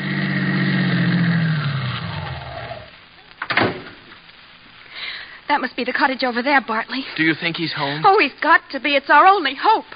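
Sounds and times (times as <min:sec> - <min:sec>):
staged sound effect of a car driving up and stopping: 0:00.0 - 0:03.0
sharp clunks: 0:03.4 - 0:04.0
speech: 0:05.6 - 0:09.9.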